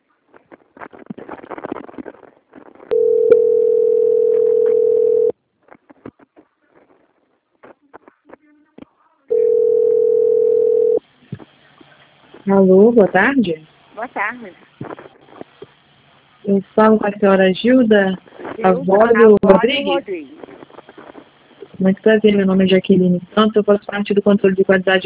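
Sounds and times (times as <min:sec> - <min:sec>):
steady mid-pitched telephone tones during a bank call transfer: 0:02.9 - 0:05.4, 0:09.3 - 0:11.0
speech: 0:12.5 - 0:14.7, 0:16.5 - 0:20.3, 0:21.8 - 0:25.0.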